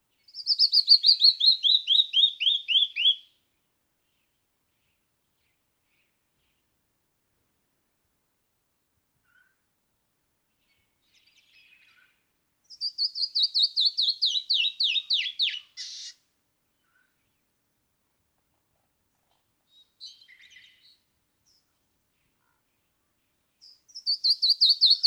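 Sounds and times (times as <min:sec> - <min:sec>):
canyon wren singing: 0:00.2 - 0:03.2, 0:12.7 - 0:16.2, 0:23.6 - 0:25.0.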